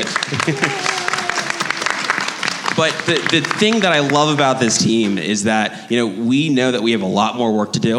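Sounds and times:
speech: 0.0s - 1.0s, 2.8s - 7.9s
room full of people clapping for team members: 0.0s - 5.5s
laughter: 0.0s - 5.7s.

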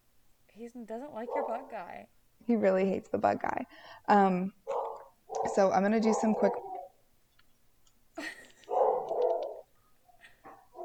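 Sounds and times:
speech: 0.6s - 4.7s, 5.4s - 6.7s
dog barking: 1.2s - 1.9s, 4.7s - 7.0s, 8.7s - 10.8s.

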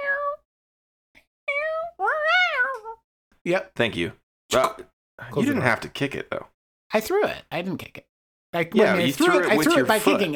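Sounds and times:
cat meowing: 0.0s - 0.4s, 1.5s - 3.0s
speech: 3.4s - 10.3s.

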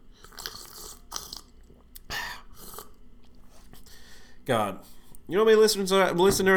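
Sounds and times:
person drinking water with gulps and wet mouth noises: 0.0s - 3.4s
speech: 4.5s - 6.5s.

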